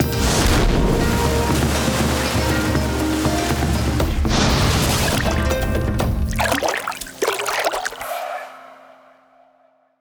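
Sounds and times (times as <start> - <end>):
big win water-themed music sound effect: 1.1 - 8.2.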